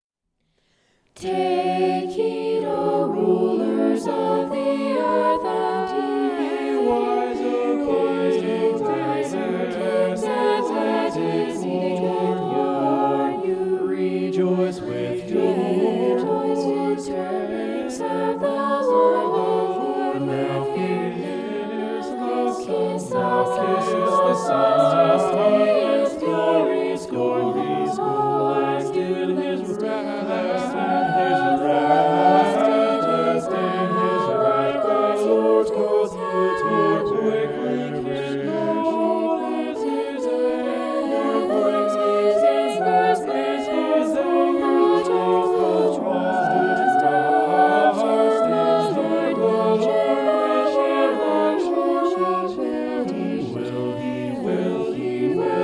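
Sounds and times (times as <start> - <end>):
polyphonic vocals in G minor: 1.2 - 55.6.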